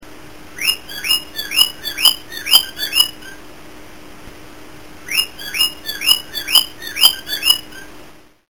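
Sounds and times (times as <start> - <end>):
cockatiel calling in bright rising-then-falling whistled chirps: 0.6 - 3.4, 5.1 - 7.9.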